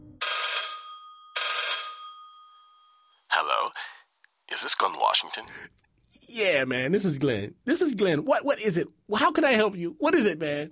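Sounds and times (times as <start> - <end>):
office cubicle telephone ringing: 0.2 - 3.3
speech: 4.6 - 10.6.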